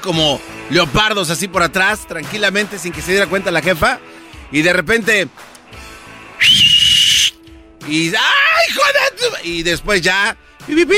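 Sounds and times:
speech: 0.0s - 5.5s, 6.4s - 6.8s, 7.9s - 10.9s
flirtatious wolf whistle: 6.4s - 7.4s.

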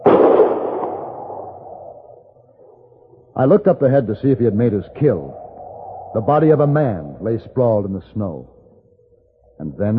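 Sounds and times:
rifle shot fired by a hunter over snowy flat land: 0.0s - 1.3s
speech: 3.4s - 5.4s, 6.1s - 8.6s, 9.6s - 9.9s.

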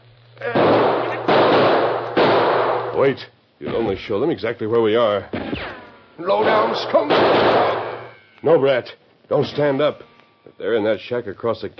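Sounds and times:
gunshots fired across a canyon: 0.5s - 3.0s, 5.3s - 8.2s
speech: 3.0s - 7.8s, 8.4s - 11.7s.

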